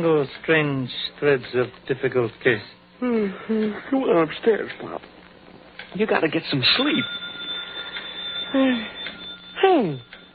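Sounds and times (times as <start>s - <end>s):
speech: 0.0s - 5.2s, 5.9s - 7.2s, 8.5s - 10.1s
telephone ringing: 6.6s - 10.3s.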